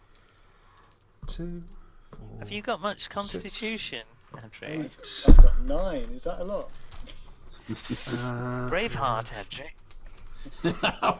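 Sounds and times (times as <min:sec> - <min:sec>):
speech: 0:01.4 - 0:09.8, 0:10.4 - 0:11.1
laughter: 0:07.6 - 0:08.6, 0:10.4 - 0:11.1
person humming: 0:07.7 - 0:08.7
plastic dice being handled and counted: 0:09.7 - 0:10.4.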